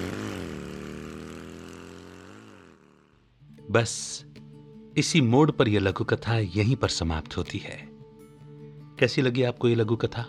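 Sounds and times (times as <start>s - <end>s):
motorcycle engines roaring away down a lane: 0.0s - 3.2s
speech: 3.7s - 4.4s, 5.0s - 7.9s, 9.0s - 10.2s.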